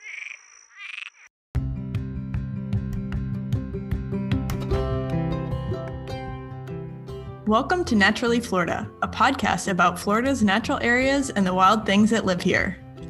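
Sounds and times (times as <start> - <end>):
Cuban tree frog croaking: 0.0 - 1.3
music: 1.6 - 13.0
speech: 7.5 - 12.8.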